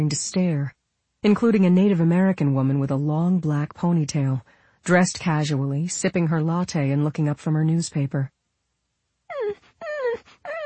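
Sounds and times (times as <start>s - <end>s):
speech: 0.0s - 8.4s
white dog whimpering beside a tree outside a coffee shop: 9.3s - 10.6s.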